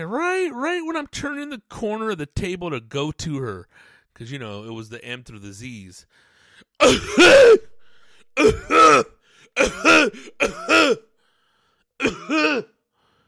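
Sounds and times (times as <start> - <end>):
speech: 0.0 - 7.7, 8.4 - 11.1, 12.0 - 12.7
person imitating an older lady's harsh barking seal-like cough: 6.8 - 7.7, 8.4 - 11.0, 12.0 - 12.8.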